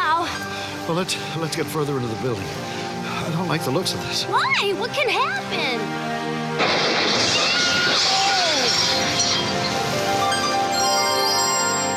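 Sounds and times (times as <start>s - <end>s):
speech: 0.9s - 7.4s
glass shattering: 6.6s - 10.6s
tinkling glass shards: 7.1s - 11.7s.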